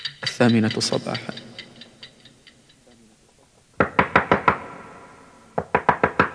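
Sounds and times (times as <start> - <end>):
speech: 0.4 - 1.4
sharp knocking on a door: 5.6 - 6.3.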